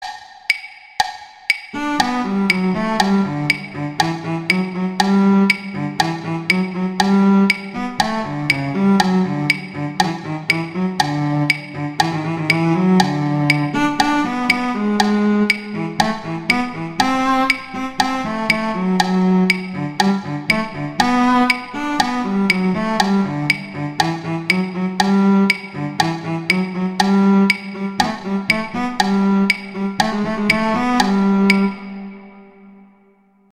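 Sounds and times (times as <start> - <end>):
cello duet: 1.8 - 32.6.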